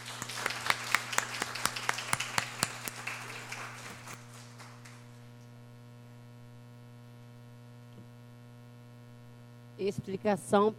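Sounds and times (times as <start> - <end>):
small audience applauding: 0.0 - 5.3
low electrical hum: 0.0 - 10.7
speech: 9.8 - 10.7.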